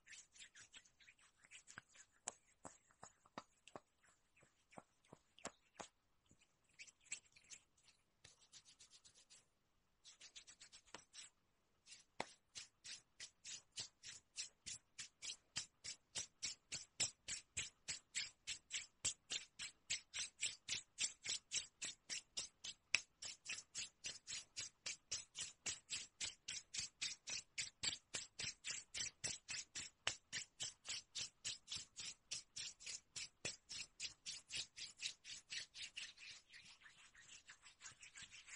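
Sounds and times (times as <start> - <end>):
skin being rubbed in quick crisp strokes: 0.0 - 38.5.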